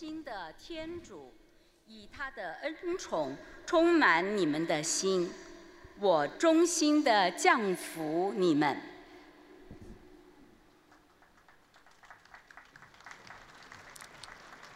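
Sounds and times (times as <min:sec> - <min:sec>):
person speaking: 0:00.0 - 0:01.3, 0:01.9 - 0:08.8
applause from crowds of pilgrims in a public square: 0:11.0 - 0:14.7.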